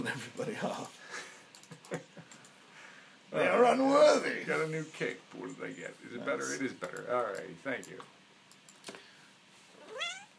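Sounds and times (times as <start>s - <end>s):
speech: 0.0s - 1.0s, 3.4s - 8.2s
cat meowing: 9.8s - 10.3s.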